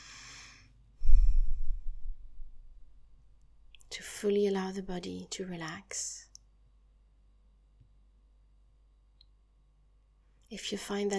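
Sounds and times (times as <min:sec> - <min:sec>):
slow breathy exhale during a guided relaxation exercise: 0:00.0 - 0:02.4
speech: 0:04.2 - 0:06.2, 0:10.5 - 0:11.1.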